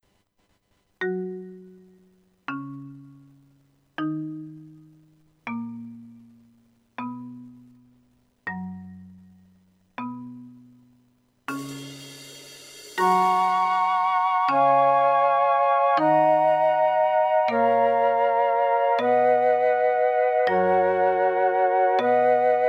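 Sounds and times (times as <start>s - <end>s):
rock percussion: 11.5s - 14.8s
flute corps playing rock: 13.0s - 22.6s.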